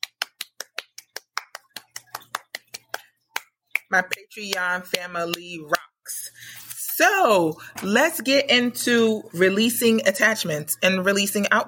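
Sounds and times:
hand clapping: 0.0 - 5.9
speech: 3.9 - 6.2, 7.0 - 11.6.

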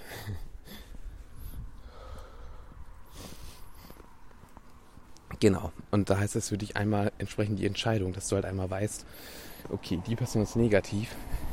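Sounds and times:
heavy labored breathing while catching breath: 0.0 - 4.4, 9.0 - 9.8, 11.1 - 11.5
speech: 5.4 - 11.3.

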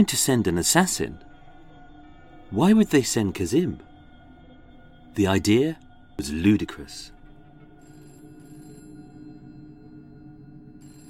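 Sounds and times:
speech: 0.0 - 1.3, 2.5 - 3.9, 5.2 - 7.2
telephone ringing with electronic tone: 7.8 - 11.0.

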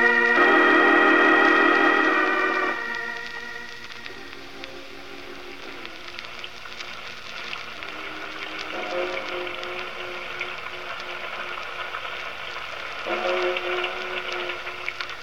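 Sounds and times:
low droning horn-like tone: 0.0 - 6.2, 7.8 - 11.6, 13.0 - 15.0
steady dense rain at night: 0.0 - 15.2.

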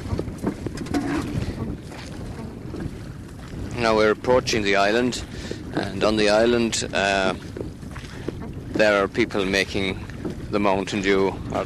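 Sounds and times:
water splashing around a moving boat: 0.0 - 11.6
wind buffeting the microphone on a boat in rough weather: 0.0 - 11.6
speech: 3.8 - 7.6, 8.8 - 11.6.

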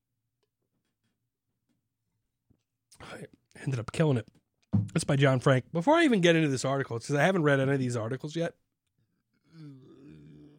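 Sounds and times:
speech: 3.0 - 8.6
loud low drawn-out croaking burp: 9.4 - 10.5.

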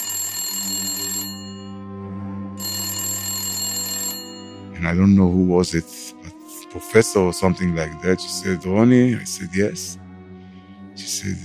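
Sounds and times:
telephone bell ringing with a harsh metallic jangle: 0.0 - 1.8, 2.6 - 4.7
speech: 4.8 - 6.0, 6.8 - 10.0, 11.1 - 11.4.

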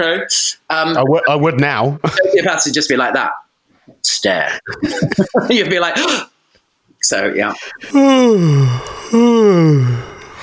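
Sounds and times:
speech: 0.0 - 3.4, 4.0 - 6.3, 7.0 - 10.1
laughter: 2.0 - 2.6, 4.5 - 6.0
person yawning aloud: 7.7 - 10.4.

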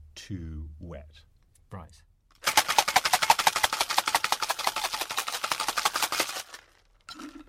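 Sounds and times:
speech: 0.2 - 2.1
cocktail shaker full of ice shaken hard and fast: 2.4 - 7.4.

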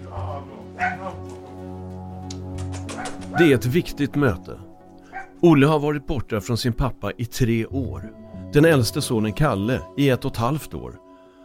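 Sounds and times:
small dog yipping and barking: 0.8 - 1.1, 5.1 - 5.4
speech: 3.4 - 4.7, 5.4 - 11.0.

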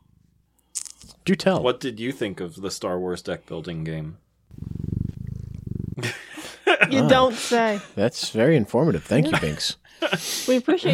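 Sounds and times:
speech: 1.3 - 4.2, 6.9 - 10.9
domestic cat purring: 4.5 - 6.0.

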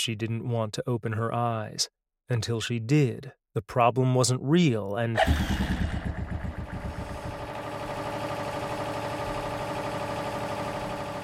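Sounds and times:
speech: 0.0 - 6.1
emergency generator sputtering to start and running: 5.2 - 11.2.

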